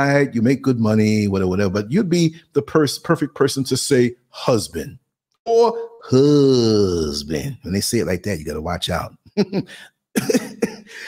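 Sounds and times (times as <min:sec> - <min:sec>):
speech: 0:00.0 - 0:11.0
man coughing: 0:09.5 - 0:11.0.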